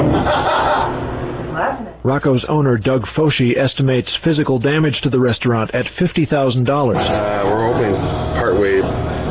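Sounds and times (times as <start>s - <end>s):
green parrot imitating a laugh in a cage: 0.2s - 1.0s
speech: 2.1s - 9.2s.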